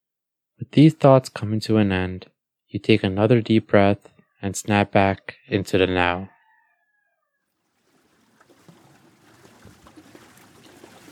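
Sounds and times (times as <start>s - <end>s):
speech: 0.7s - 6.4s
water lapping and trickling as a boat glides along a river: 7.6s - 11.1s.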